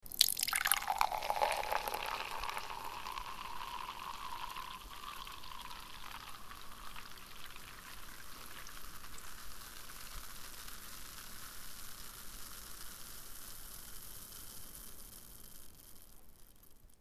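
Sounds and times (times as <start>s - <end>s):
soda fizzing: 0.0s - 11.1s.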